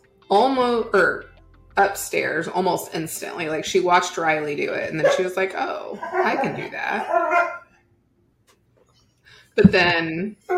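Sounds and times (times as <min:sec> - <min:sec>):
speech: 0:00.3 - 0:07.5, 0:09.6 - 0:10.5
dog barking: 0:07.0 - 0:07.6.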